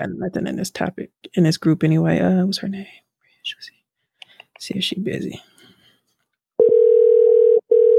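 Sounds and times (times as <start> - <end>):
speech: 0.0 - 3.8, 4.6 - 5.5
telephone ringback tone: 6.6 - 7.9.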